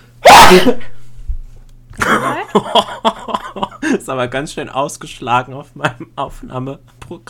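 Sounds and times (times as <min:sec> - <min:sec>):
person sneezing loudly: 0:00.2 - 0:01.0
speech: 0:00.5 - 0:00.9, 0:04.1 - 0:07.2
laughter: 0:02.0 - 0:03.9.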